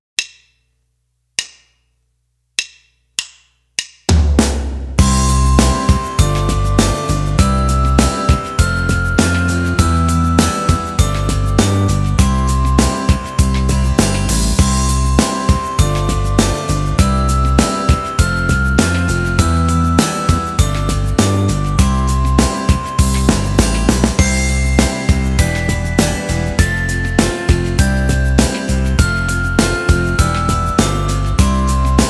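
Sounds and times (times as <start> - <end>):
glockenspiel: 5.0 - 32.0.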